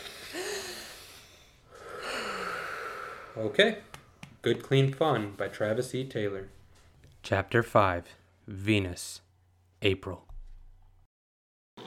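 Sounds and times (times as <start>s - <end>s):
deep breath drawn in and let out: 0.0s - 4.2s
speech: 3.4s - 6.6s, 7.3s - 9.2s, 9.8s - 10.3s.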